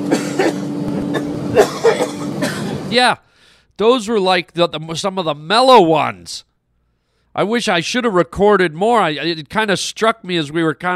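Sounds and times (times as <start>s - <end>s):
man coughing and wheezing in an airplane seat: 0.0s - 2.9s
constant low airplane engine-like drone: 0.0s - 3.0s
speech: 2.9s - 6.5s, 7.4s - 10.9s.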